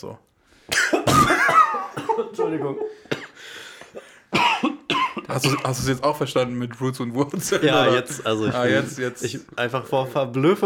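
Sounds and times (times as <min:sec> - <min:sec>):
speech: 0:00.0 - 0:00.8, 0:02.2 - 0:03.2, 0:05.3 - 0:10.6
harsh coughing after choking: 0:00.7 - 0:05.9
laughter: 0:01.7 - 0:03.1, 0:07.3 - 0:09.3.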